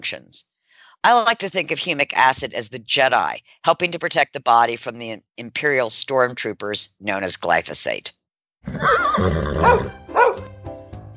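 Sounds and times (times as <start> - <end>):
speech: 0.0 - 10.5
horse neighing: 8.6 - 10.4.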